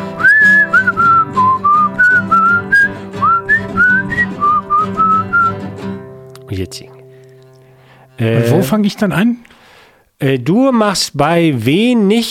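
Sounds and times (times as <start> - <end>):
person whistling a wandering melody: 0.0 - 5.6
strummed guitar accompaniment: 0.0 - 9.0
speech: 6.7 - 6.9, 8.2 - 9.5, 10.2 - 12.2.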